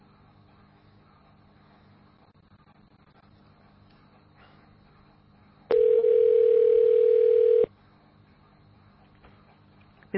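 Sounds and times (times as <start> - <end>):
telephone dial tone after a call is hung up: 5.7 - 7.7.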